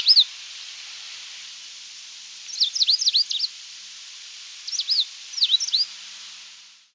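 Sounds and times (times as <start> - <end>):
Coal-crested finch Charitospiza eucosma giving thin high chirps: 0.0 - 0.2, 2.5 - 3.5, 4.7 - 5.9
steady hiss: 0.0 - 6.9.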